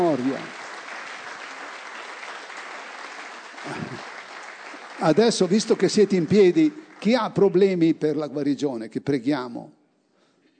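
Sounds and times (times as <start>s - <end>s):
speech: 0.0s - 0.6s, 3.6s - 3.8s, 5.0s - 9.8s
audience applauding at a prayer service: 0.0s - 7.9s.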